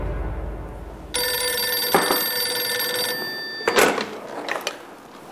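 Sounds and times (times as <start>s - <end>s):
telephone ringing with a bell-like ring: 1.1s - 4.8s.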